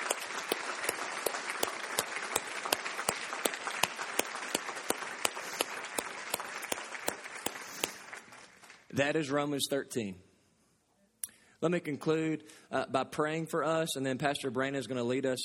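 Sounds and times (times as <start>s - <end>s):
audience applause at a church service: 0.0s - 8.9s
speech: 9.0s - 10.3s, 11.6s - 15.4s.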